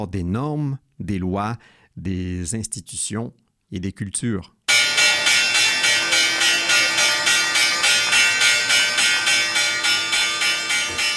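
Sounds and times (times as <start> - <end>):
speech: 0.0 - 4.6
New York Stock Exchange trading bell ringing: 4.7 - 11.1.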